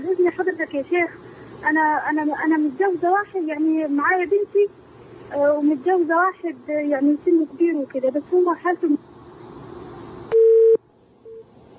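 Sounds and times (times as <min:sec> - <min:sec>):
low telephone line hiss: 0:00.0 - 0:11.7
speech: 0:00.1 - 0:09.1
telephone busy tone after a phone call is cut off: 0:10.3 - 0:11.4.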